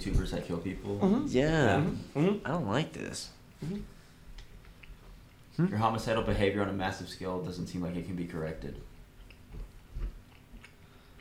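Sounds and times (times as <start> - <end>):
speech: 0.0 - 4.0, 5.6 - 8.9
soft chewing with mouth closed: 3.6 - 6.6, 7.8 - 11.1.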